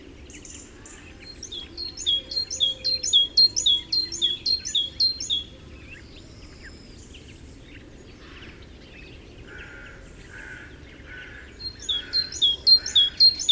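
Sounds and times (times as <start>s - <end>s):
great tit Parus major singing: 0.9s - 5.5s, 11.1s - 13.5s.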